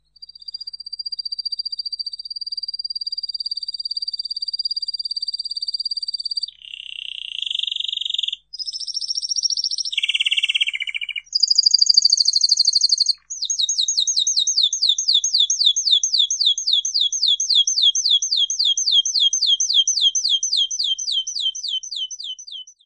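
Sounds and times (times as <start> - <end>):
domestic canary singing: 5.8 - 22.8.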